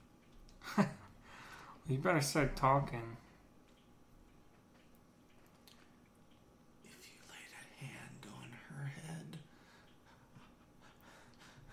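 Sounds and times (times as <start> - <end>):
voice imitating heavy anxious breathing like hyperventilating: 1.2 - 1.8, 9.5 - 11.7
speech: 1.9 - 3.2.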